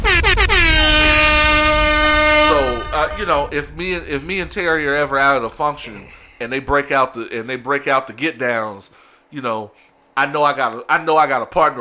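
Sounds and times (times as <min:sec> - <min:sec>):
air horn blasts: 0:00.0 - 0:05.1
speech: 0:03.0 - 0:11.7.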